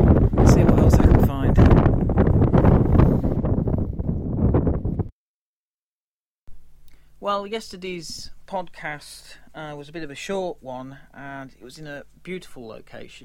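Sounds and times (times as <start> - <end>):
strong wind buffeting a microphone on an upland track in Scotland: 0.0 - 5.1
speech: 7.3 - 13.2.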